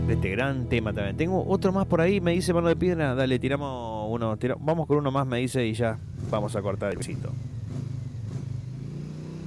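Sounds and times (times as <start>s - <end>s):
speech: 0.1s - 7.6s
motorcycle engine revving: 5.6s - 9.4s.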